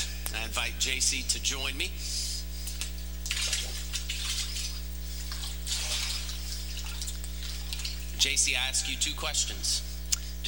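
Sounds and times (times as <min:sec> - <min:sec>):
steady low electrical hum: 0:00.0 - 0:10.4
speech: 0:00.6 - 0:02.2, 0:08.2 - 0:10.4
water sloshing as a person steps into a baptismal pool: 0:02.7 - 0:08.2.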